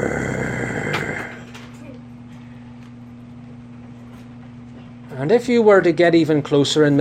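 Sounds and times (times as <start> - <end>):
man imitating a dog growling over a bone: 0.0 - 1.5
speech: 5.2 - 6.9.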